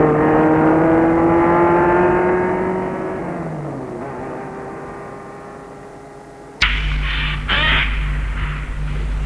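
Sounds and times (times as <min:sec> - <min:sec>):
car engine humming and slowing to a stop: 0:00.0 - 0:09.2
abrupt low rumble: 0:06.6 - 0:09.2.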